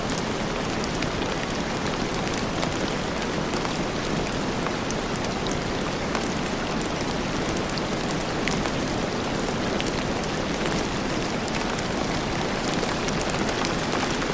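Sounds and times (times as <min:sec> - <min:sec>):
steady heavy rain: 0:00.0 - 0:14.3.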